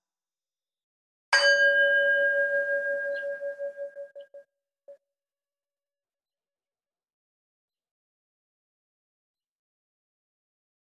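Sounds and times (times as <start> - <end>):
meditation bell ringing in a guided session: 1.4 - 4.4.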